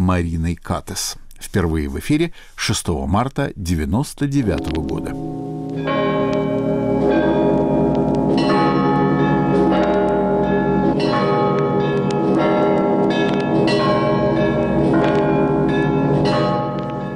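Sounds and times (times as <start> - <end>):
speech: 0.0 - 5.9
loud church bells pealing: 4.4 - 17.1.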